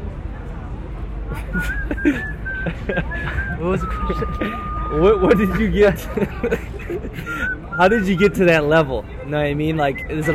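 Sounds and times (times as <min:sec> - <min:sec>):
low murmuring voices: 0:00.0 - 0:10.3
laughter: 0:01.3 - 0:08.4
speech: 0:01.3 - 0:10.3
person whistling a thin steady tone: 0:01.6 - 0:05.7, 0:07.3 - 0:08.4.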